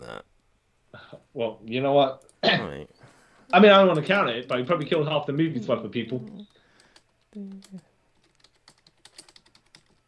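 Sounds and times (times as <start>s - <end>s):
speech: 1.4s - 6.6s, 7.3s - 7.9s
typing on a computer keyboard: 3.9s - 5.0s, 6.4s - 10.0s.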